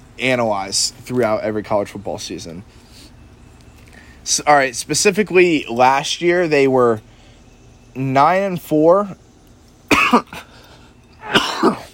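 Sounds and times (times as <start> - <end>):
speech: 0.2 - 2.8, 4.2 - 7.1, 8.0 - 9.2
person coughing: 9.9 - 10.5, 11.2 - 11.9
throat clearing: 9.9 - 10.5, 11.2 - 11.9.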